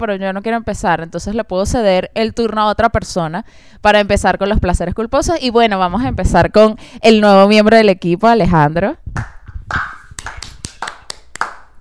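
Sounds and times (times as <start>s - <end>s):
speech: 0.0s - 9.8s
single person clapping hands: 9.7s - 11.7s.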